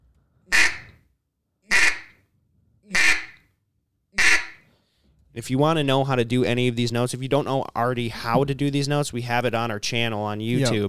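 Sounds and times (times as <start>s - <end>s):
duck quacks blown on a duck call: 0.5s - 1.0s, 1.7s - 2.2s, 2.9s - 3.4s, 4.2s - 4.6s
speech: 5.4s - 10.8s.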